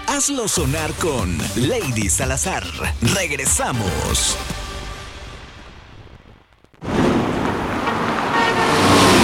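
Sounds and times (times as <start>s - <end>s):
speech: 0.2s - 4.6s
steady rain: 4.4s - 9.2s
traffic passing: 6.9s - 9.2s
car horn tooting: 7.8s - 9.2s.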